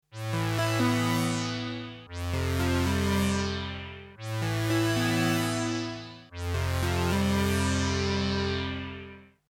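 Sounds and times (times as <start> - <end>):
Poly D synthesizer arpeggio: 0.1 - 9.3.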